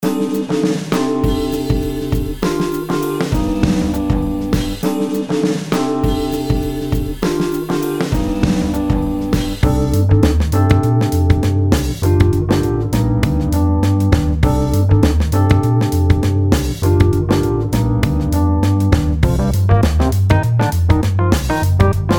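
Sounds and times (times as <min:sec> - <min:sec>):
beat: 0:00.0 - 0:22.1.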